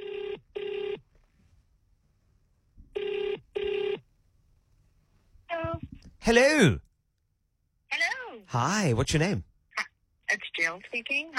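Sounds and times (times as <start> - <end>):
telephone ringing on outgoing call: 0.0 - 1.0, 3.0 - 4.0
speech: 6.2 - 6.9, 8.5 - 9.5, 10.7 - 11.3.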